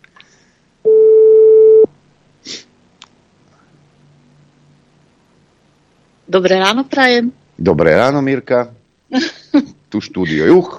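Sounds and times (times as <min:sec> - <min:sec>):
telephone call tone for a call outside the mobile network: 0:00.8 - 0:01.9
speech: 0:06.3 - 0:10.7.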